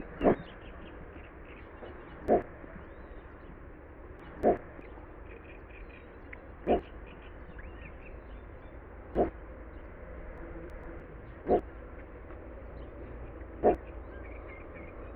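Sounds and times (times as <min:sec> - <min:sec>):
Little Bittern Ixobrychus minutus calling: 0:00.0 - 0:01.0, 0:01.8 - 0:02.5, 0:04.2 - 0:04.9, 0:06.6 - 0:07.0, 0:09.2 - 0:09.4, 0:11.3 - 0:11.7, 0:13.6 - 0:13.9.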